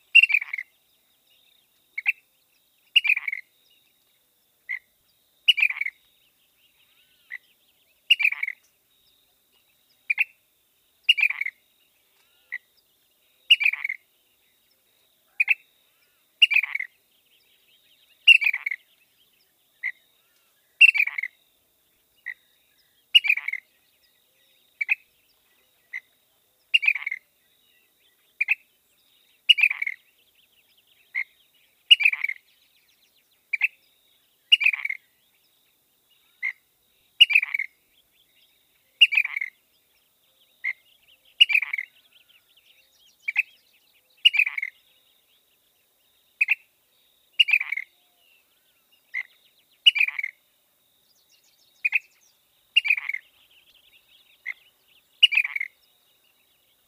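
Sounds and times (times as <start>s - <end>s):
ash-throated flycatcher calling: 0.0s - 0.7s, 2.8s - 3.5s, 5.5s - 8.9s, 11.0s - 12.8s, 13.5s - 14.0s, 15.2s - 17.0s, 18.0s - 21.4s, 22.2s - 32.5s, 33.5s - 35.2s, 36.2s - 39.6s, 40.4s - 44.9s, 47.4s - 50.4s, 51.1s - 56.8s.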